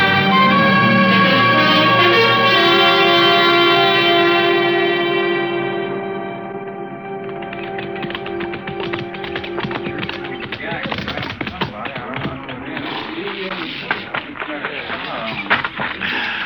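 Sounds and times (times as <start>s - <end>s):
low tonal drone: 0.0s - 10.6s
indistinct voices murmuring: 0.0s - 16.4s
horse hooves clip-clopping: 7.2s - 16.4s.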